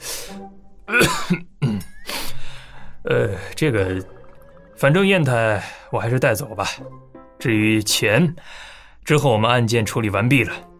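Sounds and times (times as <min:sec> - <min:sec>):
speech: 0:00.3 - 0:01.5, 0:03.1 - 0:04.2, 0:04.8 - 0:10.7
woman coughing: 0:00.9 - 0:02.0.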